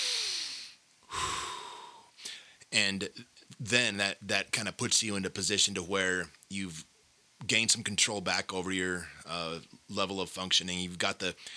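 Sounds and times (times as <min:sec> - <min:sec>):
deep breath: 0:00.0 - 0:02.7, 0:11.4 - 0:11.5
speech: 0:02.7 - 0:11.5.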